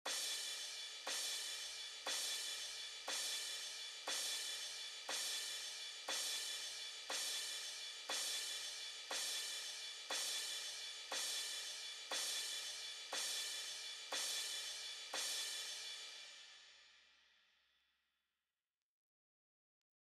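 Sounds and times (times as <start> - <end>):
cymbals: 0.1 - 16.8.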